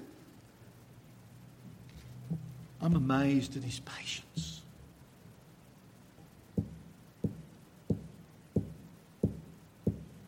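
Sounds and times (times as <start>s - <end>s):
speech: 2.3s - 4.5s
knocking on a wooden door: 6.6s - 10.1s.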